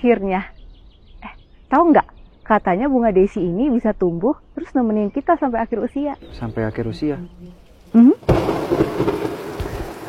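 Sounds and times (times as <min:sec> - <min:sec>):
speech: 0:00.0 - 0:00.6, 0:01.7 - 0:09.2
rain pouring down: 0:06.3 - 0:10.0.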